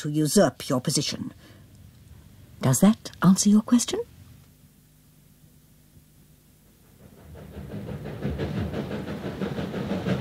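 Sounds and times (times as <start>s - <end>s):
speech: 0.0s - 1.5s, 2.6s - 4.1s
train arriving at a station: 6.9s - 10.1s.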